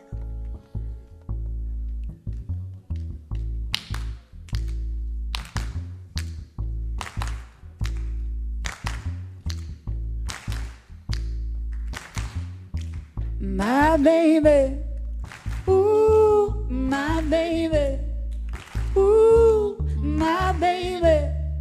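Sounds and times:
loud bass-heavy music: 0:00.0 - 0:21.6
audience clapping along to a song: 0:03.7 - 0:13.3, 0:15.2 - 0:15.8, 0:18.3 - 0:19.1.

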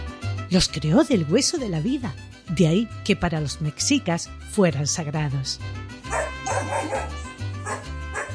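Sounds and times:
steady low musical backing: 0:00.0 - 0:08.3
speech: 0:00.5 - 0:05.9
dog barking: 0:06.1 - 0:08.3.

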